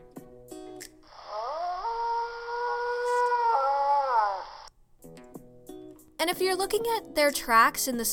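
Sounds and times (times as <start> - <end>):
coyote or wolf howling: 1.2 - 4.7
speech: 6.2 - 8.1.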